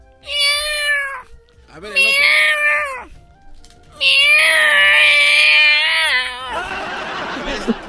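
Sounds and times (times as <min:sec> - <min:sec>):
cat meowing: 0:00.2 - 0:03.2, 0:03.9 - 0:06.7
speech: 0:01.8 - 0:02.2
laughter: 0:06.4 - 0:07.8.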